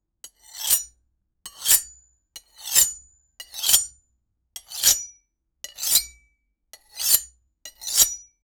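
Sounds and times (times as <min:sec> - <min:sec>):
knife cutting metal: 0:00.4 - 0:00.9, 0:01.5 - 0:03.9, 0:04.6 - 0:05.1, 0:05.7 - 0:06.2, 0:06.8 - 0:08.2.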